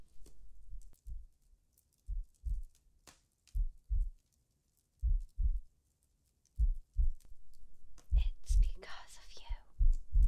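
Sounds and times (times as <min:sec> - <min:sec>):
slow steady heartbeat in lub-dub pairs: 0:01.1 - 0:01.3, 0:02.1 - 0:02.7, 0:03.6 - 0:04.1, 0:05.0 - 0:05.6, 0:06.6 - 0:07.3, 0:08.0 - 0:08.8, 0:09.5 - 0:10.2.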